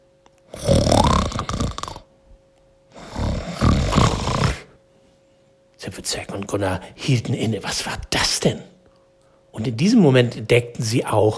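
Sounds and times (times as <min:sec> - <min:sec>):
person snoring: 0:00.5 - 0:02.1, 0:02.9 - 0:04.8
speech: 0:06.0 - 0:08.7, 0:09.6 - 0:11.3.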